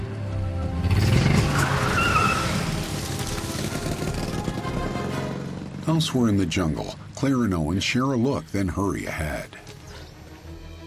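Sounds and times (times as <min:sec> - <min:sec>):
car engine roaring while pulling away: 0:00.2 - 0:08.5
car tires skidding in the jungle: 0:00.8 - 0:05.7
speech: 0:05.9 - 0:09.7.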